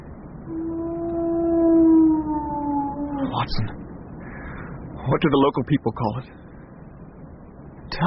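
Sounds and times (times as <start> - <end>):
low rumbling background: 0.0 - 8.0
hound howling on the moor: 0.4 - 3.8
speech: 3.4 - 3.8, 5.0 - 6.4.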